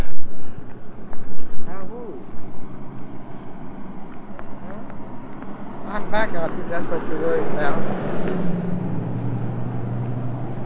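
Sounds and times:
car passing by: 0:02.8 - 0:10.6
speech: 0:06.1 - 0:08.6.

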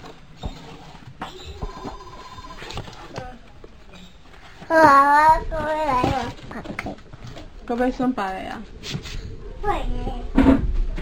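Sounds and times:
short electronic phone ringtone: 0:01.7 - 0:02.7
speech: 0:04.7 - 0:07.0, 0:07.7 - 0:09.0, 0:09.6 - 0:10.5.

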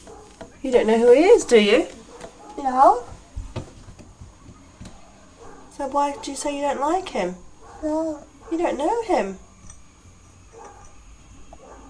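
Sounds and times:
agitated dog barking: 0:00.0 - 0:00.4, 0:02.0 - 0:02.8, 0:04.9 - 0:06.6, 0:07.6 - 0:08.8, 0:10.5 - 0:11.8
low noise: 0:00.0 - 0:11.8
speech: 0:00.7 - 0:02.0, 0:02.6 - 0:03.1, 0:05.8 - 0:09.4.

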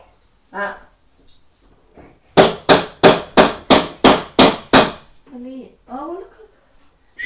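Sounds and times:
speech: 0:00.5 - 0:01.4, 0:05.4 - 0:06.4
hammer strikes: 0:02.4 - 0:05.1.

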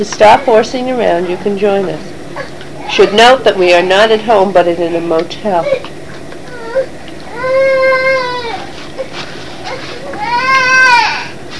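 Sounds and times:
speech: 0:00.0 - 0:05.9
low steady hum: 0:00.0 - 0:11.5
young child crying in a temper tantrum in a motel room: 0:06.5 - 0:09.1, 0:09.7 - 0:11.4.

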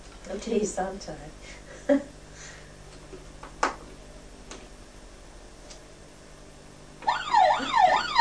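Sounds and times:
speech: 0:00.3 - 0:02.2
police car siren wailing: 0:07.0 - 0:08.1.

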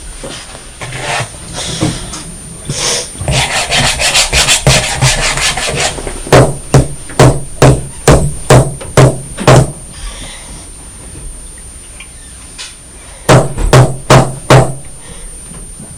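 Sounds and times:
hammer banging: 0:03.4 - 0:09.8, 0:13.3 - 0:14.8.

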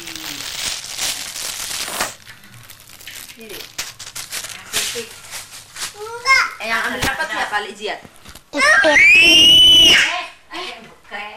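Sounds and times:
speech: 0:03.4 - 0:03.7, 0:07.5 - 0:10.2
child screaming: 0:08.6 - 0:10.1.

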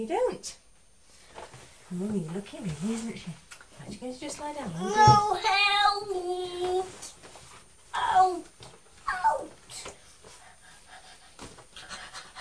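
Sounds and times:
speech: 0:00.0 - 0:00.6, 0:01.9 - 0:07.1, 0:08.0 - 0:08.6
young child panting in short breathy bursts: 0:10.2 - 0:12.3.

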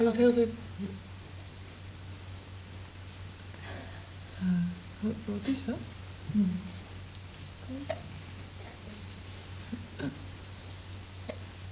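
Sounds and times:
low steady hum: 0:00.0 - 0:11.7
speech: 0:00.1 - 0:01.1, 0:04.4 - 0:06.8, 0:07.7 - 0:08.2, 0:10.0 - 0:10.2
soft brief hiccups: 0:07.8 - 0:08.1, 0:10.0 - 0:10.2, 0:11.2 - 0:11.5.

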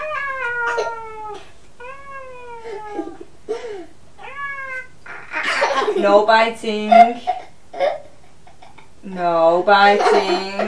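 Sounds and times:
cat meowing: 0:00.0 - 0:03.2, 0:04.2 - 0:05.5
speech: 0:06.0 - 0:07.3, 0:09.1 - 0:10.6.

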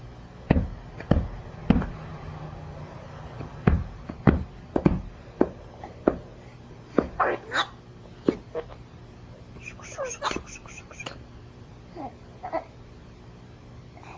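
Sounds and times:
ball banging on a hard surface: 0:00.5 - 0:02.0, 0:03.4 - 0:06.3, 0:06.9 - 0:07.2.

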